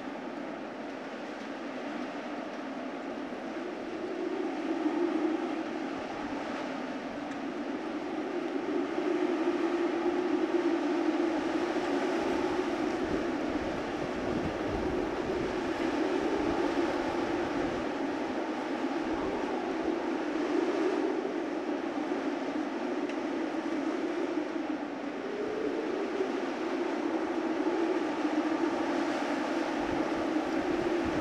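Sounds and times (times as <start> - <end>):
wind howling: 0.0 - 31.1.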